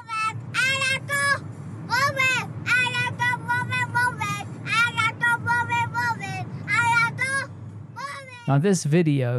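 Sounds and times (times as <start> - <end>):
engine rumble and road noise inside a moving car: 0.0 - 9.3
speech: 8.5 - 9.3.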